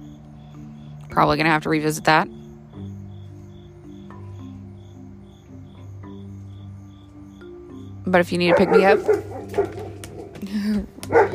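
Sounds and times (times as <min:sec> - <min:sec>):
speech: 0:01.1 - 0:02.4, 0:08.1 - 0:09.8
dog barking in short yappy bursts: 0:08.4 - 0:10.4, 0:11.0 - 0:11.3
dog drawn-out whining howl: 0:08.5 - 0:10.4.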